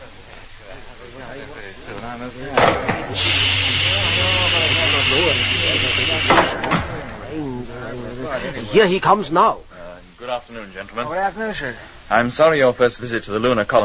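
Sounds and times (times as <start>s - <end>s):
speech: 1.4s - 4.4s, 5.0s - 13.8s
laughter: 2.5s - 8.9s
sharp blasts: 2.6s - 7.3s
spaceship engine roaring and whining while landing: 3.1s - 6.4s.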